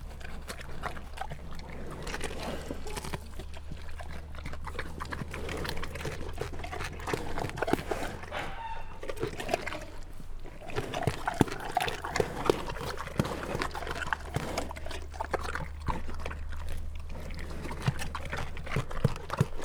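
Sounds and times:
captive brown bears chewing and crunching at a zoo: 0.0 - 19.6.

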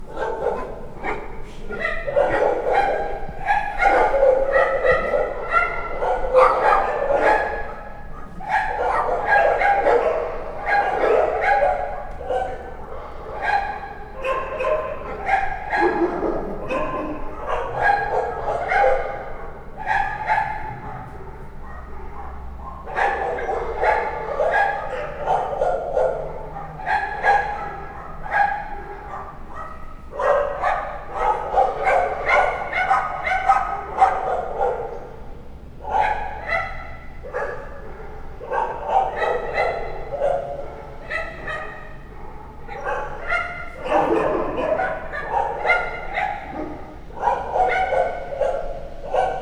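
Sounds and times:
dogs barking at night: 0.0 - 49.4.

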